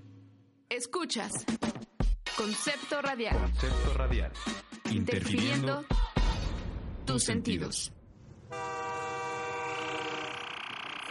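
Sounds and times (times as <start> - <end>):
speech: 0.7 - 1.8, 2.4 - 6.0, 7.1 - 8.0
train horn sounding a sustained chord: 8.5 - 10.7.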